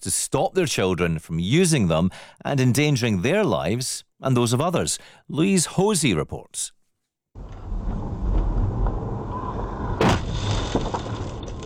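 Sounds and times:
speech: 0:00.0 - 0:06.8
high-speed e-motorbike rider crashing into a car: 0:07.4 - 0:11.6
steady road and engine rumble: 0:07.4 - 0:11.6.

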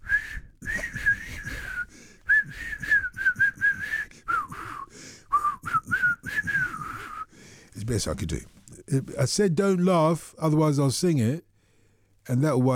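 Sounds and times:
airy breaths between phrases: 0:00.0 - 0:05.5, 0:06.2 - 0:07.8
person attempting to whistle a tune: 0:00.0 - 0:07.3
speech: 0:07.9 - 0:11.5, 0:12.3 - 0:12.7.

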